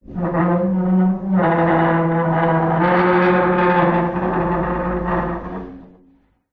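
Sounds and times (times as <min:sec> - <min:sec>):
large heavy metal scrape: 0:00.0 - 0:06.3.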